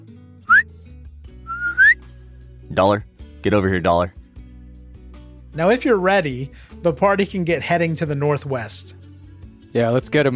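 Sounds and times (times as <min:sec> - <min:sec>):
person whistling to call a horse over: 0:00.5 - 0:00.7, 0:01.4 - 0:02.1
speech: 0:02.7 - 0:04.2, 0:05.6 - 0:09.0, 0:09.7 - 0:10.3.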